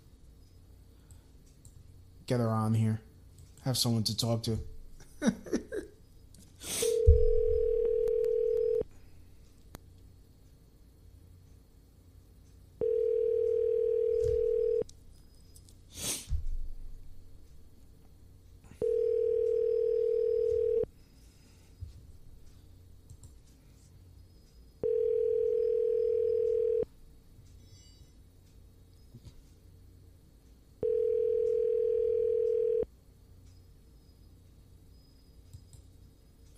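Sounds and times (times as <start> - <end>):
speech: 2.3 - 5.5
outgoing phone call ringback tone: 6.8 - 8.8, 12.8 - 14.8, 18.8 - 20.9, 24.8 - 26.9, 30.8 - 32.9.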